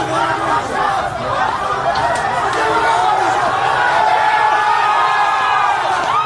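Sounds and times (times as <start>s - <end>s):
laughter: 0.0s - 6.1s
large crowd shouting and yelling after gunshots: 0.0s - 6.2s
whoops from crowd: 4.4s - 6.2s.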